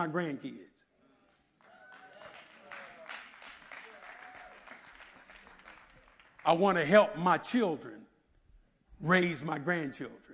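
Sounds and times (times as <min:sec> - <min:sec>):
speech: 0:00.0 - 0:00.9, 0:06.4 - 0:08.0, 0:09.0 - 0:10.3
audience clapping: 0:01.2 - 0:06.9.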